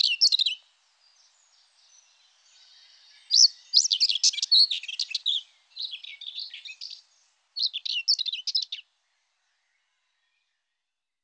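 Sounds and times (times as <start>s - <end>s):
Common whitethroat twittering: 0.0s - 0.6s, 3.3s - 7.0s, 7.6s - 8.8s
Common whitethroat song phrases: 0.0s - 11.0s.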